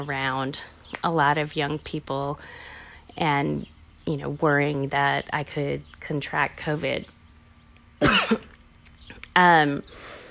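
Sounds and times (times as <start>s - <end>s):
speech: 0.0s - 7.2s, 8.2s - 8.5s, 9.4s - 10.2s
throat-clearing cough: 8.0s - 8.6s.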